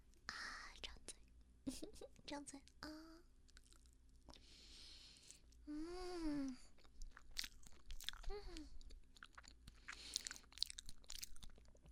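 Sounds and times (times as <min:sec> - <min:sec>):
speech: 0:01.7 - 0:03.2, 0:05.7 - 0:06.7, 0:08.3 - 0:08.8
chewing a bite of durian mille-crepe cake: 0:03.4 - 0:04.5, 0:06.6 - 0:11.8
person sighing: 0:05.7 - 0:06.7.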